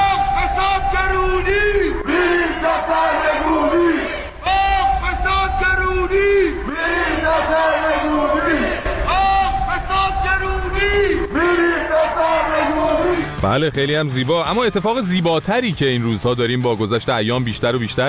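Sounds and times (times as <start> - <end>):
protest crowd chanting slogans in unison: 0.0 - 13.4
speech: 13.4 - 18.0.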